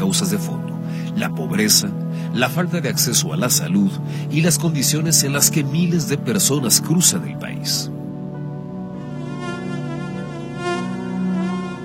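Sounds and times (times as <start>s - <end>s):
speech: 0.1s - 8.1s
mosquito buzzing: 8.0s - 11.8s.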